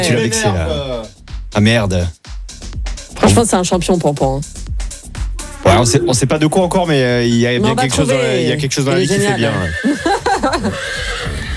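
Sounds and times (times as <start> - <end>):
speech: 0.0 - 2.3, 3.2 - 4.6, 5.8 - 11.1
laughter: 7.6 - 10.9
horse from a herd whinnying: 9.0 - 11.5.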